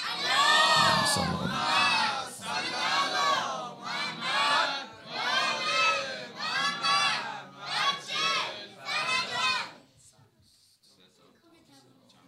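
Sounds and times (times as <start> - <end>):
large crowd chanting a salawat blessing in unison: 0.0 - 9.8.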